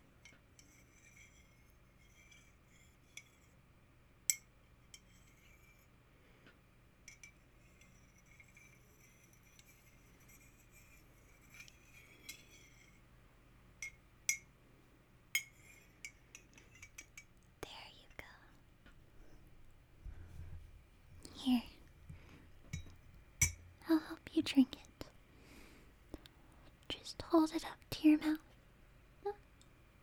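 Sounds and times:
quiet hiss: 0.0s - 30.0s
spoon clinking against a cup while stirring a drink: 0.2s - 3.6s, 4.3s - 5.8s, 7.0s - 13.0s, 13.8s - 14.5s, 15.4s - 17.3s, 22.7s - 23.7s
speech: 21.4s - 21.7s, 24.4s - 24.9s, 27.3s - 28.5s.

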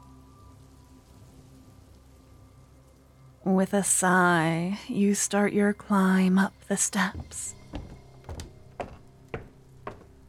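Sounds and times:
rain striking a hard surface outside an open rooftop door: 0.0s - 3.4s
speech: 3.5s - 7.6s.

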